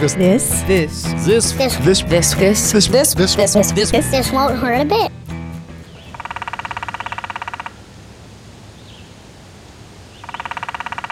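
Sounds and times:
speech: 0.0s - 5.2s
downy woodpecker drumming: 0.8s - 7.8s, 10.2s - 11.1s
steady outdoor hiss: 7.4s - 10.3s.

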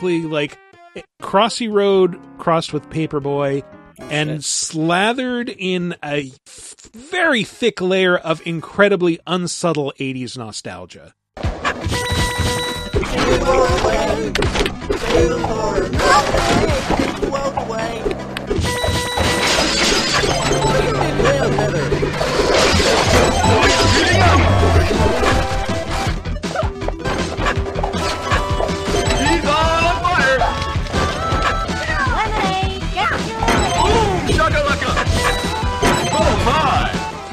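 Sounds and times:
speech: 0.0s - 12.0s, 13.2s - 18.0s
bright electronic video game chimes, zaps, crashes and jingles: 11.8s - 37.2s.

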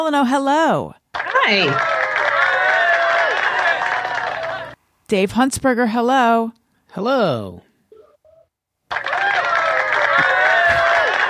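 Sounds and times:
speech: 0.0s - 1.9s, 5.1s - 7.7s
live audience cheering that sounds like booing: 1.2s - 4.8s, 8.9s - 11.2s.

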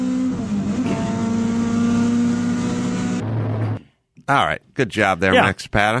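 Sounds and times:
race car engines roaring accelerating out of a corner: 0.0s - 3.8s
speech: 4.3s - 5.9s.

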